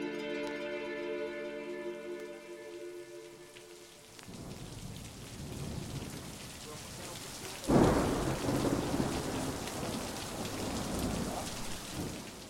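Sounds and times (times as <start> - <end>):
steady rain: 0.0 - 12.4
thunder rumbling: 4.2 - 12.4.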